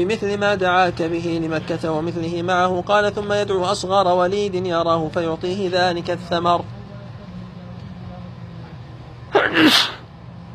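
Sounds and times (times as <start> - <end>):
speech: 0.0 - 6.8, 9.5 - 9.9
low steady hum: 0.0 - 10.5
sneeze: 9.3 - 10.1.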